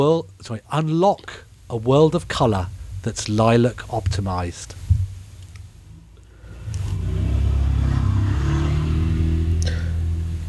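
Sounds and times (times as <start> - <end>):
speech: 0.0 - 4.9
car passing: 6.4 - 10.4.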